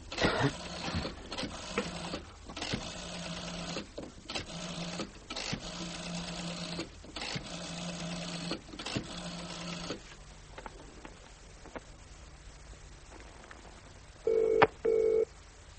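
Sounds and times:
faint hiss: 0:00.0 - 0:15.7
telephone dial whirring: 0:00.1 - 0:10.0
telephone ringing tone after dialing: 0:14.3 - 0:15.3.

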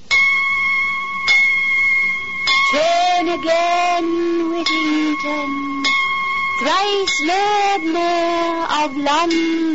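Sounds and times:
church bells in London ringing for six o'clock: 0:00.1 - 0:09.7
speech: 0:03.3 - 0:05.9, 0:06.6 - 0:09.7.

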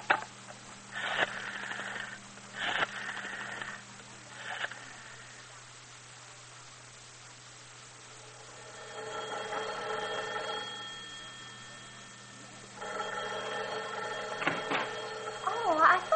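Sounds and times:
telephone ringing: 0:01.0 - 0:03.8, 0:08.2 - 0:16.1.

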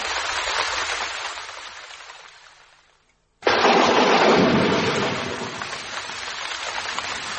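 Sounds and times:
heavy rain during a storm: 0:00.0 - 0:07.3
thunder crack and rumble during a storm: 0:03.4 - 0:07.3.

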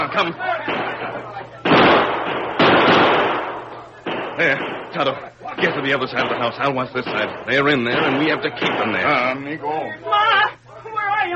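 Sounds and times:
speech: 0:00.2 - 0:00.5, 0:04.4 - 0:10.6
gunfire in a radio drama shootout: 0:00.6 - 0:09.4.

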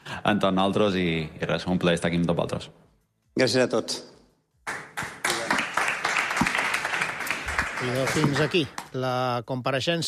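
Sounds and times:
speech: 0:00.2 - 0:04.1, 0:07.8 - 0:10.0
audience applause: 0:04.7 - 0:08.9.

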